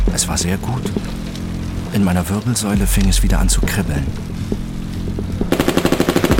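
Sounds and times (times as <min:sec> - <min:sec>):
speech: 0:00.1 - 0:01.2, 0:01.9 - 0:04.7
submachine guns firing on a cyclist: 0:05.5 - 0:06.3.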